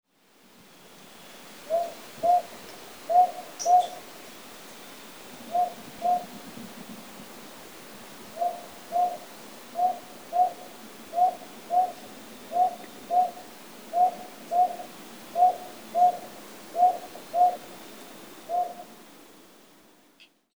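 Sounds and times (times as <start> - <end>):
Northern Boobook calling: 1.7 - 4.0, 5.5 - 6.4, 8.3 - 17.7, 18.5 - 18.9.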